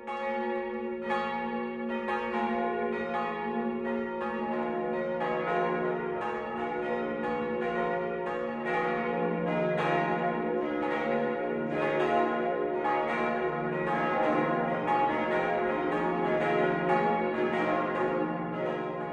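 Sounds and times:
five church bells ringing noon peal in Volkach, Lower Franconia, Germany: 0.0s - 19.1s.

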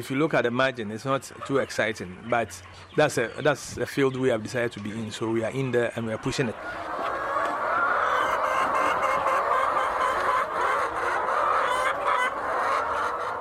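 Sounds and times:
speech: 0.0s - 7.0s
thousands of chickens clucking and chattering in a poultry barn near Accra: 0.0s - 13.3s.

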